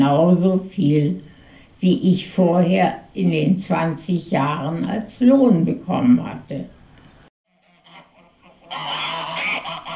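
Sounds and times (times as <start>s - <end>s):
speech: 0.0s - 6.8s
flock of geese honking and cackling: 7.5s - 9.9s.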